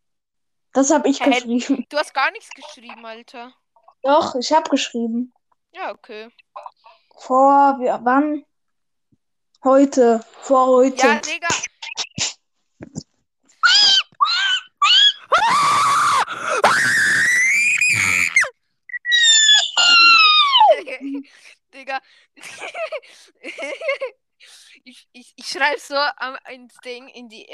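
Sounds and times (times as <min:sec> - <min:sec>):
speech: 0:00.8 - 0:08.5, 0:09.6 - 0:13.0, 0:21.0 - 0:24.2, 0:24.8 - 0:27.5
loud shrill screaming with yelps and shrieks: 0:13.6 - 0:20.7.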